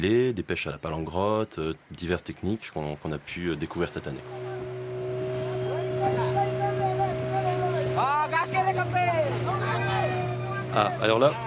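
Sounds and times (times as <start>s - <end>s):
speech: 0.0s - 4.5s, 10.8s - 11.4s
boat engine droning at sea: 3.2s - 11.4s
voices with rising, wavering calls: 3.2s - 11.4s.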